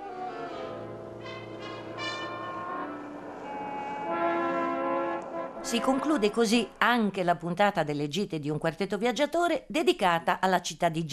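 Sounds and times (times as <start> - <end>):
train whistle: 1.2 - 6.4
speech: 5.7 - 11.1.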